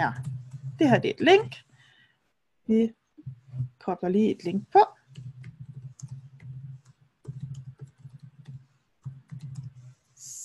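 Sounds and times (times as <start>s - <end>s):
speech: 0.0s - 1.7s, 2.7s - 3.0s, 3.9s - 5.0s
computer clicks while saving an entry: 5.0s - 9.9s.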